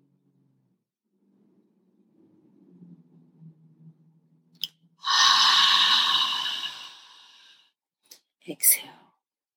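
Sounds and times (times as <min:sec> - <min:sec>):
deep inhale and exhale breathing: 0:05.0 - 0:07.7.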